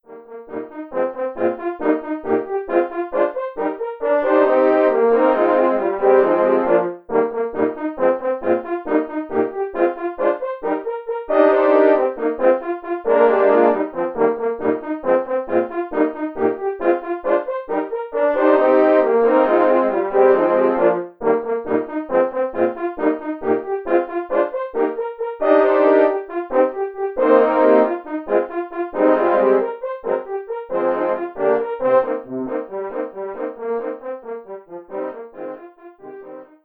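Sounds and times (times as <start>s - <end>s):
four horns playing a scherzo: 0.1s - 36.6s.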